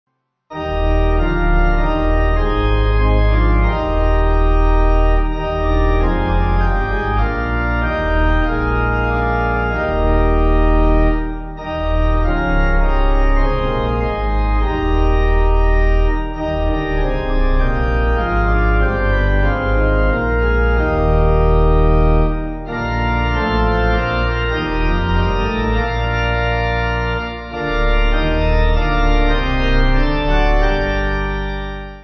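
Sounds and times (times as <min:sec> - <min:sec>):
pipe hymn backing in E flat: 0:00.5 - 0:32.0.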